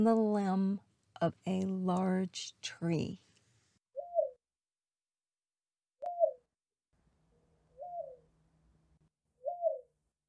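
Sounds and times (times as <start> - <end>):
speech: 0.0 - 3.3
dove cooing: 7.8 - 8.2, 9.4 - 9.9.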